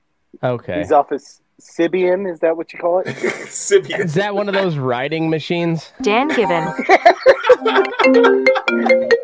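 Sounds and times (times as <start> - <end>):
speech: 0.4 - 9.1
laughter: 3.0 - 4.9, 6.3 - 9.2
phone ringtone playing a bouncy electronic melody: 6.3 - 9.2.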